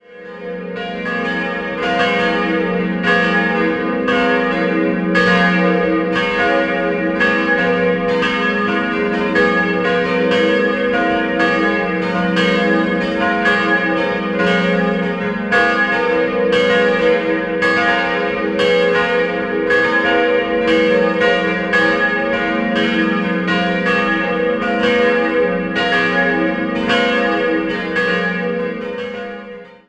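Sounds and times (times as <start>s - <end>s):
bells: 0.0s - 29.8s.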